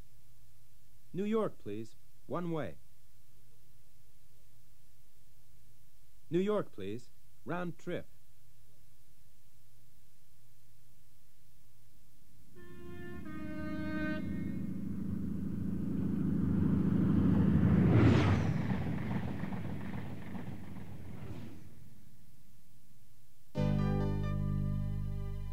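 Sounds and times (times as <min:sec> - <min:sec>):
speech: 0:01.1 - 0:02.8, 0:06.3 - 0:08.1
steady musical tone: 0:12.5 - 0:18.7, 0:23.6 - 0:25.5
airplane engine roaring past with rising whine: 0:12.6 - 0:21.9.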